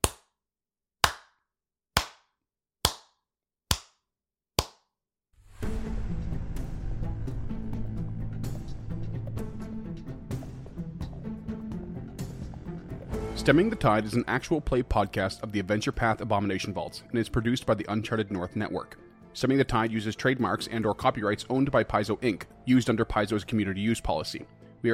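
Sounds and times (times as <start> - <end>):
slow sharp handclaps: 1.0 - 1.4, 2.0 - 4.0
dense music: 5.4 - 16.2
speech: 13.4 - 24.9.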